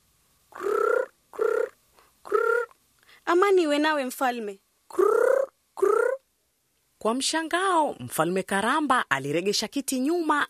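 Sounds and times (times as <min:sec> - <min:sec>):
dove cooing beside a plate on a king's table: 0:00.5 - 0:02.7, 0:04.9 - 0:06.2
speech: 0:03.3 - 0:05.0, 0:07.0 - 0:10.4.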